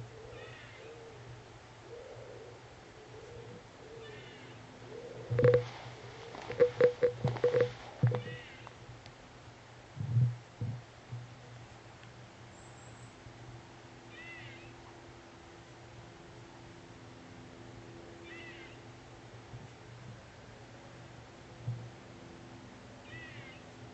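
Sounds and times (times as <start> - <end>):
juvenile honey buzzard chicken call: 0.1 - 1.3, 1.9 - 8.7, 14.1 - 14.8, 18.2 - 18.8, 23.0 - 23.7.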